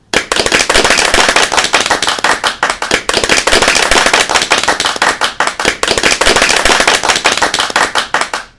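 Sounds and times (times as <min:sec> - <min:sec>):
clapping: 0:00.1 - 0:08.5.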